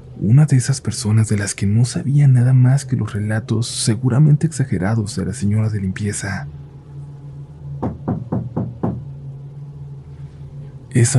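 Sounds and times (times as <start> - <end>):
steady low hum: 0.0 - 11.1
speech: 0.2 - 6.6, 11.0 - 11.1
firm knocks on a door at night: 7.8 - 9.1.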